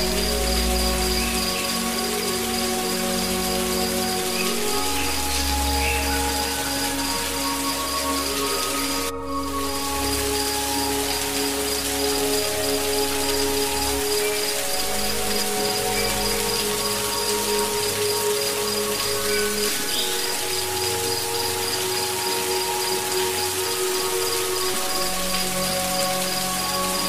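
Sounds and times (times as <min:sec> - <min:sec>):
rushing water of a jungle waterfall in Costa Rica: 0:00.0 - 0:27.0
sustained insect-like tones in a Costa Rica jungle: 0:00.0 - 0:27.0.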